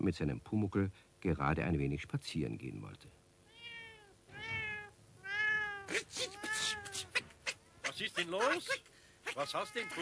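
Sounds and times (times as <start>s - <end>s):
speech: 0.0s - 3.2s, 8.0s - 10.0s
black cat with two white paws meowing in a courtyard: 3.4s - 7.4s, 9.3s - 10.0s.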